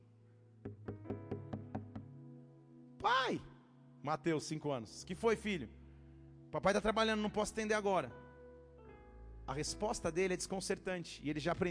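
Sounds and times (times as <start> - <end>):
knocking on a door: 0.6 - 2.1
speech: 3.3 - 5.8, 6.5 - 8.2, 9.5 - 11.6.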